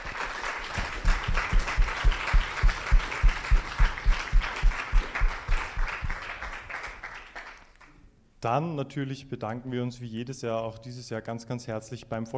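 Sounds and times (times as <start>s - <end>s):
broad wash of crowd noise: 0.0s - 6.5s
audience applauding loudly in rhythmic unison: 0.0s - 8.0s
speech: 8.4s - 12.3s.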